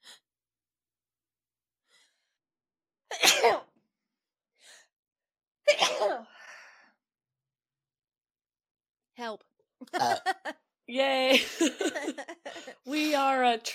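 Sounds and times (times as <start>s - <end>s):
loud explosive sneezes: 3.1s - 3.7s, 5.7s - 6.2s
speech: 3.4s - 3.7s, 10.9s - 13.7s
short breathy inhale: 6.3s - 7.0s
laughter: 9.8s - 12.8s.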